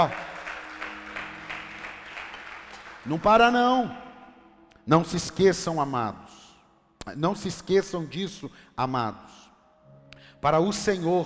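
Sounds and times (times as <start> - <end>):
speech: 0.0 - 0.3, 3.0 - 4.0, 4.8 - 6.3, 7.1 - 9.4, 10.4 - 11.2
crowd applauding: 0.0 - 4.0.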